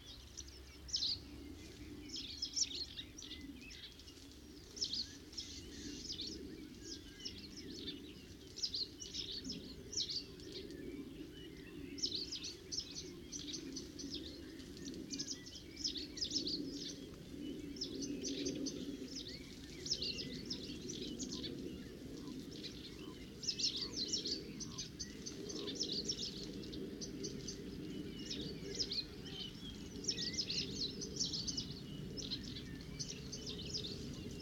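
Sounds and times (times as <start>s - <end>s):
huge flock of starlings chattering in a clay pit: 0.0s - 34.4s.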